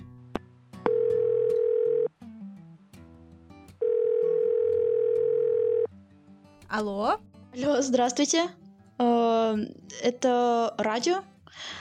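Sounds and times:
telephone ringback tone on an outgoing call: 0:00.9 - 0:02.1, 0:03.8 - 0:05.9
speech: 0:06.8 - 0:11.7.

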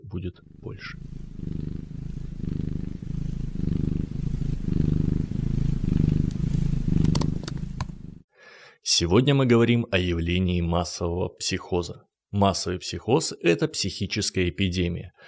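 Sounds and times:
speech: 0:00.1 - 0:01.6, 0:09.0 - 0:15.2
cat purring: 0:00.1 - 0:08.2
faint clicks: 0:06.2 - 0:08.0.

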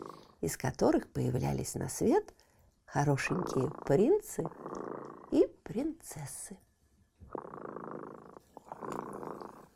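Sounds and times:
cat purring: 0:00.0 - 0:00.7, 0:03.0 - 0:06.0, 0:07.2 - 0:09.7
speech: 0:00.4 - 0:06.6.

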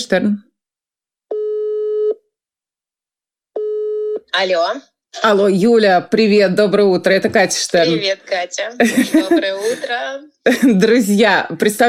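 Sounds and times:
speech: 0:00.0 - 0:00.5, 0:04.3 - 0:11.8
phone ringback tone on an outgoing call: 0:01.3 - 0:02.2, 0:03.6 - 0:04.2
laughter: 0:08.8 - 0:10.8.

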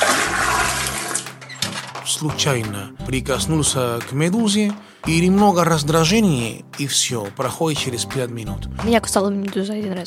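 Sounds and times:
bucket of dirty water dumped out of a window onto the street: 0:00.0 - 0:01.4
speech: 0:02.1 - 0:10.0.

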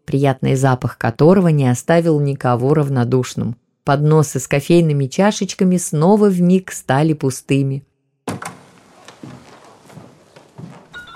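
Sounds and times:
speech: 0:00.1 - 0:08.5
door thrown open with a loud bang: 0:08.3 - 0:11.1
heavy irregular footsteps of soldiers stepping into a drawing room: 0:08.3 - 0:11.1.

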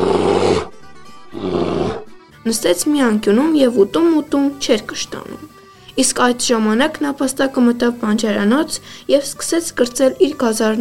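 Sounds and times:
bear roaring: 0:00.0 - 0:02.2
speech: 0:02.5 - 0:10.7.

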